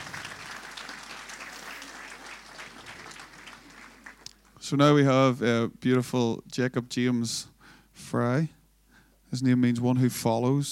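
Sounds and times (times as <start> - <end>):
indoor crowd applauding: 0.0 - 4.5
speech: 4.7 - 8.6, 9.3 - 10.7.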